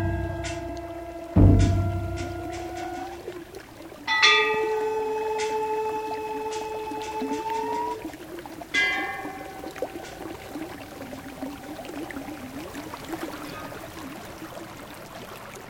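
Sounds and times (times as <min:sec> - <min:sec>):
faint sustained tones: 0:00.0 - 0:14.2
glacial mountain stream rushing: 0:00.0 - 0:15.6.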